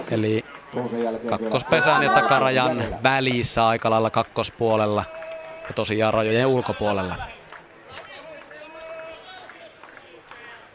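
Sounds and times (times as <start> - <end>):
low murmur of crowd chatter in an open stadium: 0.0 - 10.7
speech: 0.1 - 7.4
scattered claps from stadium crowd: 0.4 - 1.7, 3.8 - 10.7.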